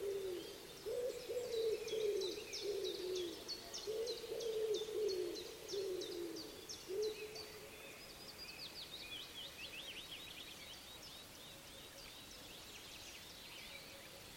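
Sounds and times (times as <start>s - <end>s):
common wood pigeon cooing: 0.0s - 6.4s
songbird chirping: 0.0s - 14.3s.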